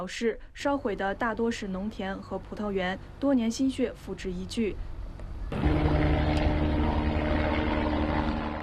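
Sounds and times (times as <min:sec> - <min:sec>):
speech: 0:00.0 - 0:04.9
firefighting aircraft engine and propeller droning: 0:04.9 - 0:08.6.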